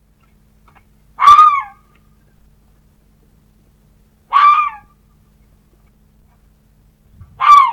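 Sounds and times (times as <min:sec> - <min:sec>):
red fox calling hoarse wailing barks: 0:01.2 - 0:01.9, 0:04.3 - 0:04.9, 0:07.4 - 0:07.7.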